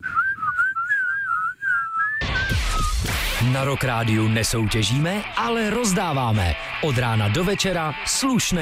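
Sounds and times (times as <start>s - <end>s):
person whistling a wavering tune-like melody: 0.0s - 3.1s
loud rough burst of noise: 2.2s - 6.9s
speech: 3.4s - 8.5s.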